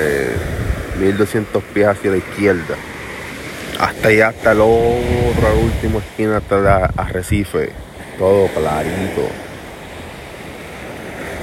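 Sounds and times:
ocean surf breaking on a beach shore: 0.0s - 11.4s
wind: 0.0s - 11.4s
speech: 1.0s - 2.9s, 3.8s - 9.4s.

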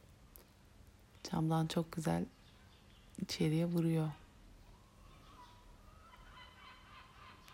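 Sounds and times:
steady hiss: 0.0s - 7.5s
speech: 1.3s - 2.4s, 3.2s - 4.2s
seagulls calling heard through a window: 4.7s - 7.5s.

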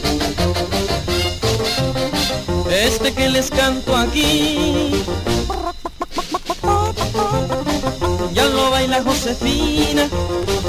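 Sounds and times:
loud busy music: 0.0s - 10.6s
speech: 2.8s - 5.3s, 7.1s - 10.6s
hen clucking: 4.7s - 8.8s.

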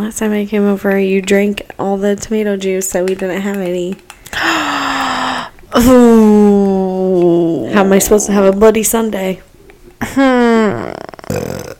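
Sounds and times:
speech: 0.0s - 4.7s, 5.8s - 6.6s, 7.2s - 9.5s, 10.1s - 11.0s
person burping into a microphone: 10.4s - 11.7s.

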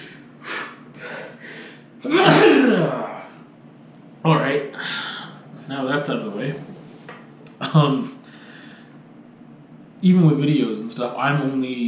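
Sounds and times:
person gasping breathy inhales: 0.0s - 1.9s, 4.8s - 5.5s, 8.2s - 8.9s
person sneezing: 2.0s - 3.2s
speech: 5.8s - 6.7s, 7.7s - 8.1s, 10.0s - 11.8s.

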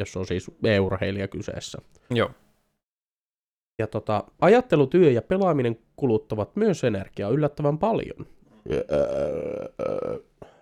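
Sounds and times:
speech: 0.0s - 2.4s, 3.8s - 10.3s
loud drawn-out burp: 8.6s - 10.5s.

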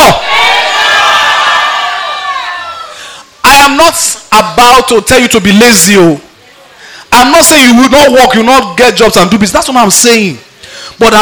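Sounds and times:
large crowd shouting together: 0.0s - 3.0s
speech: 3.9s - 6.3s, 7.2s - 11.2s.

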